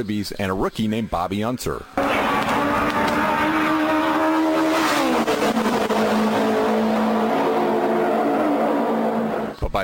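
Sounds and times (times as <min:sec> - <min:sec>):
speech: 0:00.0 - 0:03.2
high-pitched Novi race car engine roaring: 0:02.0 - 0:09.6.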